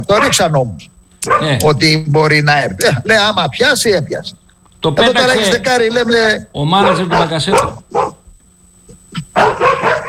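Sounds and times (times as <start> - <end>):
speech: 0.0 - 8.1
dogs barking and yelping as they pass by: 1.2 - 1.5, 6.8 - 8.2, 9.1 - 10.0.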